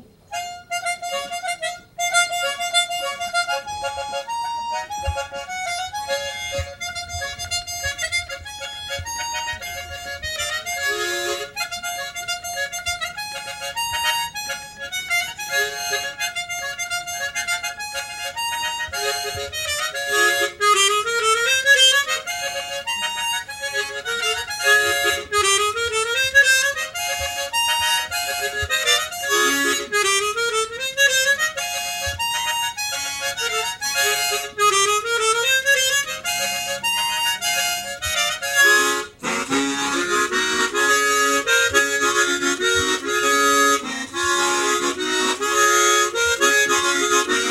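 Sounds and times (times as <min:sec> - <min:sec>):
gaita played by a northeastern gaiteiro: 0:00.3 - 0:47.4.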